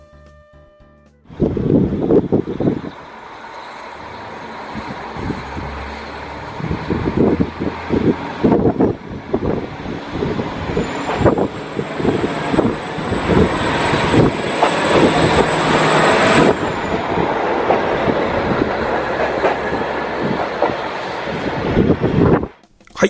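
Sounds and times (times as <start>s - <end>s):
KiHa 40 diesel railcar engine chugging departing Mukawa Station: 1.3s - 22.3s
wind noise: 1.3s - 22.6s.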